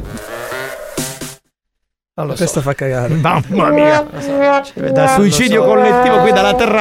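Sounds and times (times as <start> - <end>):
speech: 2.2 - 6.7
laughter: 2.9 - 6.7
sheep bleating in a long quavering cry: 3.4 - 6.7.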